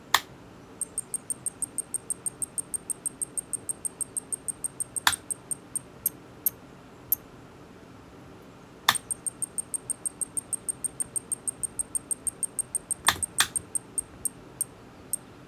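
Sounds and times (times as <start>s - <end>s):
Minitel fault beep: 0.8s - 5.9s, 9.0s - 14.4s.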